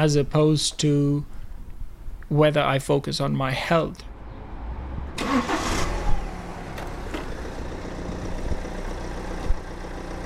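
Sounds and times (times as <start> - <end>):
speech: 0.0 - 1.4, 2.3 - 4.1
BMW 3 Series car engine starting and idling: 4.1 - 10.2.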